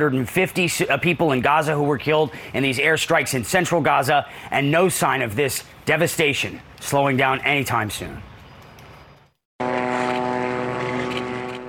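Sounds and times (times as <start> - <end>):
speech: 0.0 - 8.3
Israeli military drones buzzing overhead in Gaza: 9.6 - 11.6.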